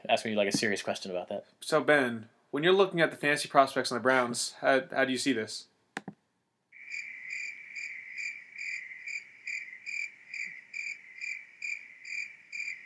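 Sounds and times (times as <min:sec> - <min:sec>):
speech: 0:00.1 - 0:05.7
crickets chirping: 0:06.8 - 0:12.8.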